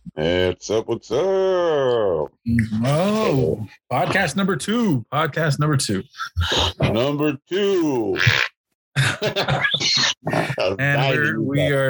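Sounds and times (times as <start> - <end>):
speech: 0.2 - 11.8
laughter: 2.6 - 4.4, 6.0 - 8.4, 9.0 - 11.8
fart noise from a fart machine: 8.2 - 8.5.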